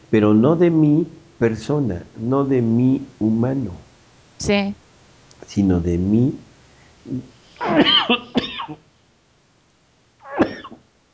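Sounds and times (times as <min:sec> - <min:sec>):
speech: 0:00.1 - 0:03.8, 0:04.4 - 0:04.8, 0:05.4 - 0:06.5, 0:07.1 - 0:08.8
person having a coughing fit: 0:07.1 - 0:08.8, 0:10.3 - 0:10.8.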